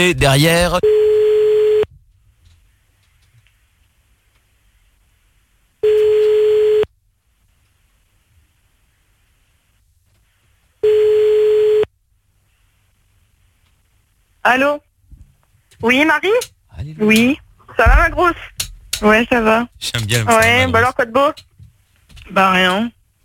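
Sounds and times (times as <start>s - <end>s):
speech: 0.0s - 0.9s, 14.4s - 14.9s, 15.8s - 21.5s, 22.3s - 23.0s
telephone line tones while placing a call: 0.8s - 1.9s, 5.8s - 6.9s, 10.8s - 11.9s.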